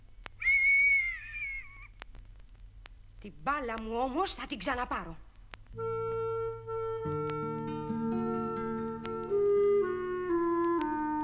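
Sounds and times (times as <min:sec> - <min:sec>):
person whistling: 0:00.4 - 0:01.9, 0:05.8 - 0:11.2
speech: 0:03.2 - 0:05.9.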